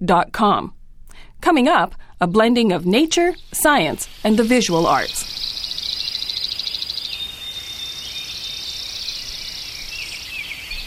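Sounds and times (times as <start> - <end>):
speech: 0.0 - 0.8, 1.4 - 5.4
chorus of birds singing at dawn by a lake: 3.1 - 10.8.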